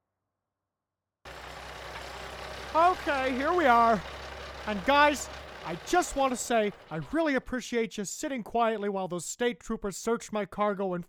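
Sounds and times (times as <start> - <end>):
truck engine starting up and running: 1.3 - 7.4
speech: 2.8 - 11.0.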